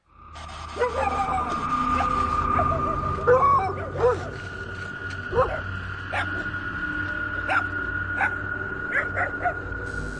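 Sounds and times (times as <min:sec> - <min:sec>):
steady droning tone: 0:00.0 - 0:10.1
dogs barking and yipping in a cemetery parking lot: 0:00.6 - 0:04.6, 0:05.2 - 0:06.6, 0:07.4 - 0:09.7.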